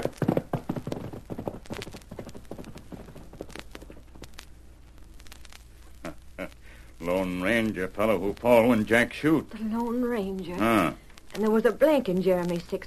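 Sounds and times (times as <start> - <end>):
ridden horse's hooves clip-clopping: 0.0 - 4.4
low steady rumble: 0.0 - 12.8
speech: 7.1 - 12.8.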